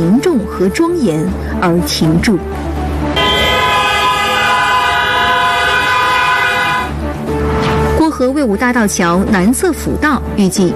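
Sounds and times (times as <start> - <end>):
speech: 0.0 - 2.8, 8.5 - 10.7
low rumble of traffic: 2.4 - 8.0
car horns honking in memorial: 3.2 - 7.0.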